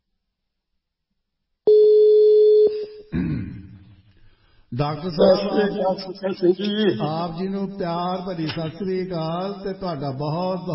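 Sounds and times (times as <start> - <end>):
steady single-pitch telephone tone as a call is placed to a doctor: 1.7 - 2.9
speech: 4.8 - 10.7.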